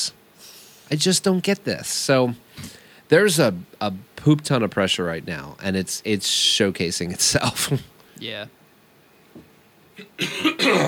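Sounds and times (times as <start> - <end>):
speech: 0.9 - 8.6, 9.4 - 10.8
faint throat clearing: 10.0 - 10.8
person coughing: 10.0 - 10.8.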